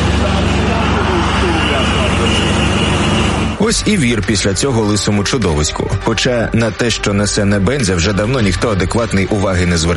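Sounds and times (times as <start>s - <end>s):
vehicle engines rumbling in a traffic jam before the Russian border crossing toward Georgia: 0.0s - 4.0s
speech: 3.8s - 9.9s.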